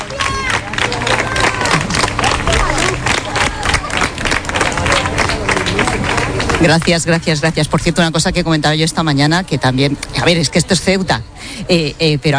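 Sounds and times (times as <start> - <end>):
large crowd clapping steadily: 0.0 - 7.5
speech: 6.6 - 12.3.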